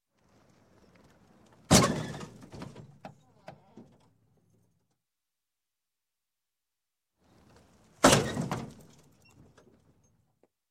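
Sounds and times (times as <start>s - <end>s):
large car fender bender crash: 1.6s - 2.9s.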